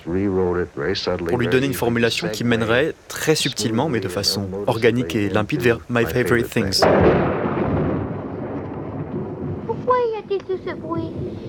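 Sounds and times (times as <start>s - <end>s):
speech: 0.0s - 7.2s
thunder rumbling: 6.8s - 11.4s.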